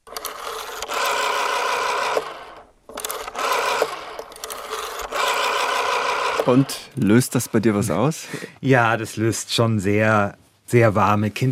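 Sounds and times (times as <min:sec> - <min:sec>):
rotary dial telephone being dialed: 0:00.0 - 0:08.0
speech: 0:06.5 - 0:11.5.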